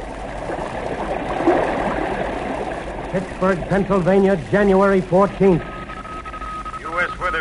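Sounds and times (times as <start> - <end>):
swirling floodwater from an overflowing creek in the Ohio River basin: 0.0 - 5.7
faint water gurgles: 0.0 - 7.3
speech: 3.1 - 5.7.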